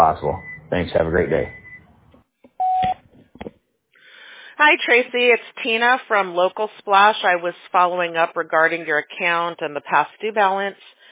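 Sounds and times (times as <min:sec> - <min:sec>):
speech: 0:00.1 - 0:01.6, 0:04.6 - 0:11.0
electronic answering machine beep: 0:00.3 - 0:00.8, 0:01.4 - 0:01.9, 0:02.6 - 0:03.0.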